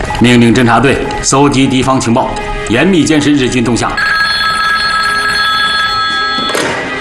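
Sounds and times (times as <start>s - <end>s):
speech: 0.2s - 4.1s
telephone bell ringing with metallic jangle: 4.0s - 6.8s.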